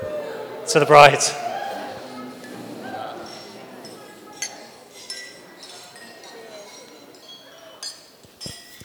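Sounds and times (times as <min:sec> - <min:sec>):
murmur of people chatting: 0:00.0 - 0:08.8
speech: 0:00.7 - 0:01.4
wine glasses clinking in a toast to the bride: 0:02.4 - 0:08.8.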